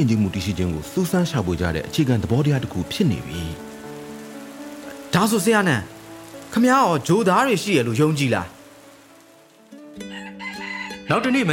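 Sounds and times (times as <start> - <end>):
speech: 0.0 - 3.7, 5.1 - 8.6, 11.1 - 11.5
rooster crowing in a village on a morning after rain: 10.0 - 11.5.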